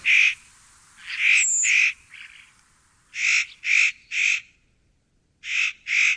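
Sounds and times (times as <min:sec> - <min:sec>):
spotted nutcracker harsh rasping calls: 0:00.0 - 0:04.4.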